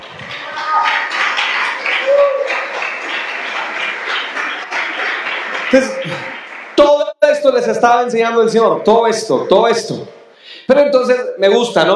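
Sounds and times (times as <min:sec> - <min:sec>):
scattered voices and cheers: 0:00.0 - 0:06.4
audience applause at an evening church service: 0:00.0 - 0:07.0
speech: 0:05.7 - 0:06.2, 0:07.7 - 0:11.9.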